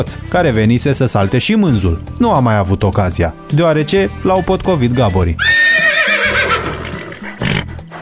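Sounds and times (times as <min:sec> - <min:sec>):
speech: 0:00.0 - 0:05.9
horse whinnying: 0:05.4 - 0:07.9.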